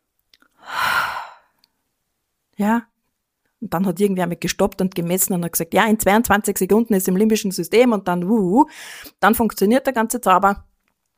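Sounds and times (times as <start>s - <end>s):
deep inhale through the nose with hands cupped around palms coated in orange oil: 0.6s - 1.6s
speech: 2.6s - 2.9s, 3.6s - 10.7s.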